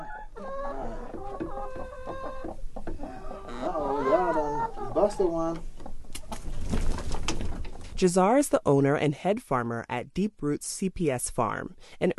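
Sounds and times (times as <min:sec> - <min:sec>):
hens clucking in a coop: 0:00.0 - 0:07.8
speech: 0:05.0 - 0:05.7, 0:08.0 - 0:12.1.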